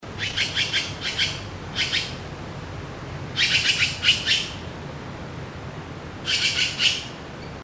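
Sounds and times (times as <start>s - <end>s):
Formosan magpie Urocissa caerulea birdcall: 0.2s - 2.2s, 3.4s - 4.6s, 6.2s - 7.1s.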